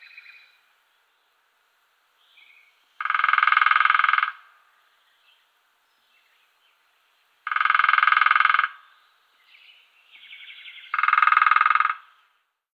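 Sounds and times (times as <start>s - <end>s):
lesser spotted woodpecker drumming: 3.0s - 4.7s, 7.4s - 8.8s, 10.3s - 12.2s.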